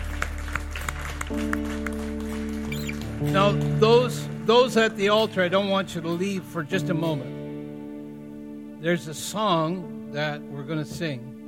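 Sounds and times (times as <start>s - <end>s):
audience clapping rhythmically in praise: 0.0s - 5.1s
organ or keyboard chords: 0.0s - 11.4s
speech: 3.2s - 7.4s, 8.8s - 11.3s.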